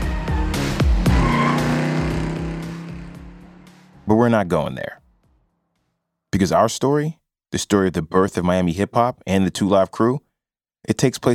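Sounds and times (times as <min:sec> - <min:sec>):
tire squeal: 0:00.2 - 0:04.0
convertible car engines revving: 0:00.3 - 0:04.5
street traffic roar: 0:00.4 - 0:04.3
speech: 0:04.1 - 0:05.0, 0:06.3 - 0:10.2, 0:10.8 - 0:11.3.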